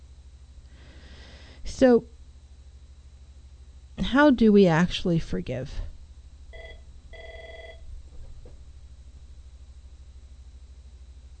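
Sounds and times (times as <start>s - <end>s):
speech: 1.8s - 2.2s, 4.1s - 5.9s
telephone ringing with an electronic trill: 6.5s - 7.9s.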